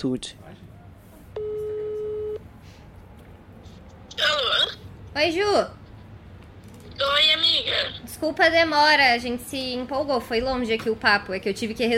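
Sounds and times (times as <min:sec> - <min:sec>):
speech: 0:00.0 - 0:00.5, 0:05.2 - 0:05.8, 0:07.0 - 0:11.9
phone ringback tone: 0:01.4 - 0:02.4.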